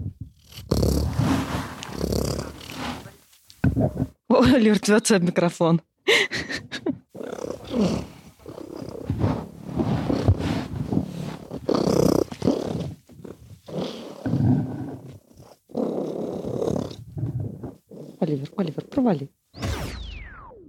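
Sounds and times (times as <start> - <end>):
cat purring: 0.0 - 4.1, 7.1 - 19.0
speech: 3.8 - 6.7, 18.6 - 19.4.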